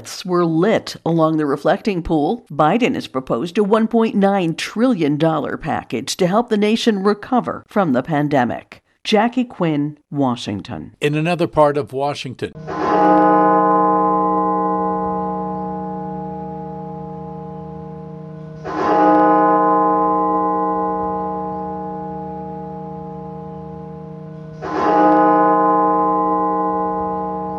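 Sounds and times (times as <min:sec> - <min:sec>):
speech: 0:00.0 - 0:13.6
cathedral bell tolling: 0:12.5 - 0:27.5.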